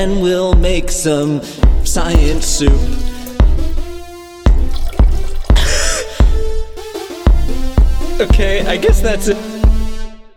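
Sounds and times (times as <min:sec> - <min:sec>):
speech: 0:00.0 - 0:03.1, 0:08.2 - 0:09.5
bubbling gurgle of mixed liquid chemicals: 0:02.2 - 0:06.1
liquid chemicals poured together splashing in a science class: 0:02.2 - 0:06.4.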